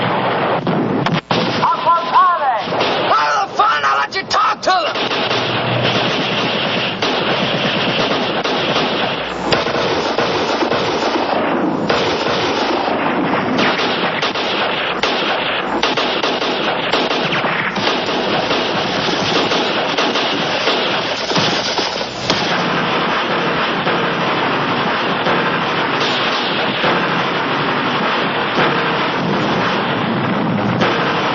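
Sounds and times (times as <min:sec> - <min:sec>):
artillery barrage explosions on tanks and rifle companies: 0:00.0 - 0:31.3
gunfire in battle: 0:00.0 - 0:31.3
voices in battle: 0:01.6 - 0:05.0.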